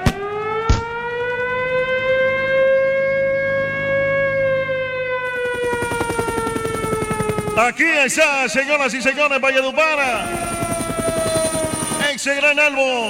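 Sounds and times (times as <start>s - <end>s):
siren sound effect wailing with rising and falling pitch: 0.0s - 13.0s
buzzing rhythmic pulse: 5.2s - 12.0s
speech: 7.6s - 10.6s, 12.2s - 13.0s.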